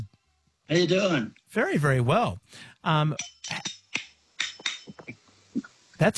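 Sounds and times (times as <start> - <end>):
speech: 0.7 - 3.8, 6.0 - 6.1
very old silver spoons played as a percussion instrument: 3.2 - 5.2.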